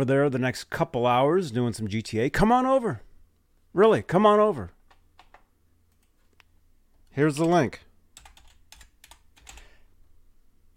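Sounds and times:
speech: 0.0 - 3.1, 3.7 - 4.8, 7.2 - 7.9
typing on a computer keyboard: 4.9 - 6.1, 8.2 - 9.7.

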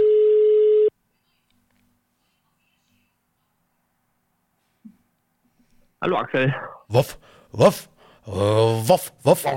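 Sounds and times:
phone outgoing call ringing tone beep: 0.0 - 0.9
speech: 6.0 - 9.5.

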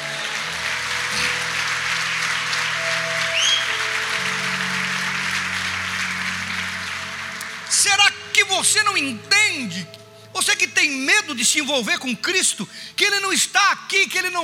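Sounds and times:
audience applauding in a room: 0.0 - 10.0
sustained low organ or keyboard tones: 0.0 - 13.0
speech: 8.6 - 14.4.

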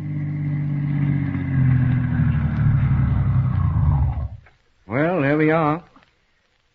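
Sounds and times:
car engine rumbling as a car pulls up in front of a house and idles: 0.0 - 4.4
speech: 5.4 - 5.9.

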